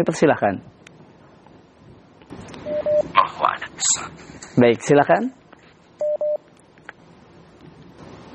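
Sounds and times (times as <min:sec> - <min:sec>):
speech: 0:00.0 - 0:00.8, 0:03.1 - 0:05.4
faint hiss: 0:00.0 - 0:08.3
dialing tones of a call over a telephone or WhatsApp line: 0:06.0 - 0:06.4.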